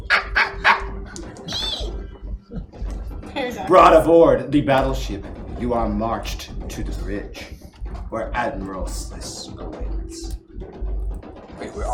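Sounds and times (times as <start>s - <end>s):
person imitating prairie dog squeaks: 0.1s - 2.0s
speech: 3.4s - 10.3s, 11.6s - 11.9s.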